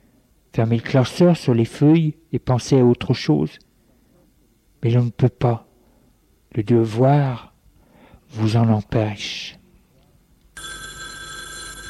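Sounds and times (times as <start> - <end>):
speech: 0.6 - 3.7, 4.8 - 5.7, 6.5 - 7.5, 8.3 - 9.6
telephone bell ringing: 10.6 - 11.8.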